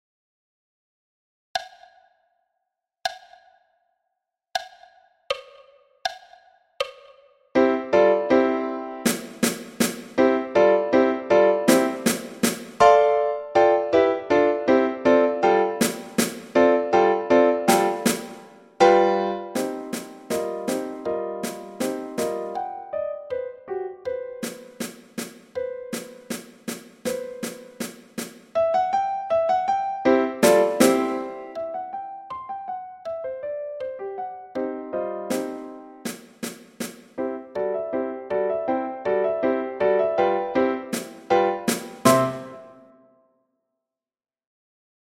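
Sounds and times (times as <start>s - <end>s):
piano at 80 BPM: 7.6s - 43.1s
snare drum at 80 BPM: 9.1s - 10.3s, 11.7s - 12.9s, 15.7s - 16.6s, 17.7s - 18.5s, 19.6s - 22.6s, 24.4s - 28.6s, 30.4s - 31.3s, 35.3s - 37.2s, 40.9s - 42.7s.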